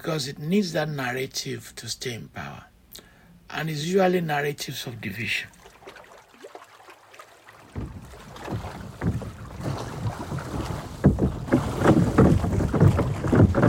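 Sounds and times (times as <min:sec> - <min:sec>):
speech: 0:00.0 - 0:02.7, 0:03.5 - 0:05.6
boat moving across water on a ride from Badagry to an island: 0:05.0 - 0:13.6
wind buffeting the microphone: 0:07.8 - 0:13.6.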